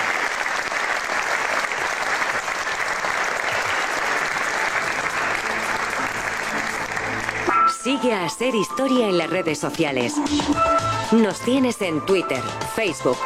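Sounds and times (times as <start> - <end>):
large audience applauding in Toledo Cathedral: 0.0 - 7.5
speech: 7.9 - 13.2.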